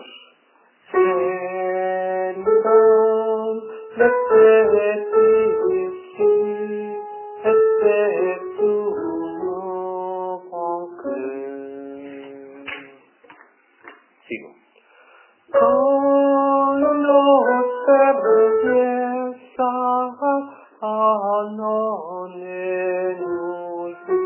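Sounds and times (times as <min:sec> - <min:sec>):
soprano pavane: 0:00.9 - 0:13.0, 0:15.5 - 0:24.2.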